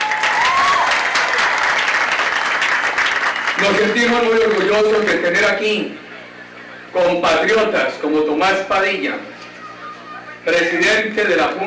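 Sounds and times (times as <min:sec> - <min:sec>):
audience applause: 0:00.0 - 0:05.3
speech: 0:03.6 - 0:06.0, 0:06.9 - 0:09.3, 0:10.4 - 0:11.6.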